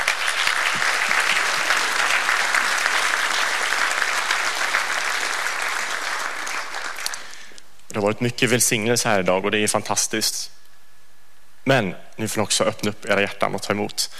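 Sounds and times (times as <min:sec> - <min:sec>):
applause from a large audience: 0:00.0 - 0:07.4
speech: 0:08.0 - 0:10.6, 0:11.7 - 0:14.1.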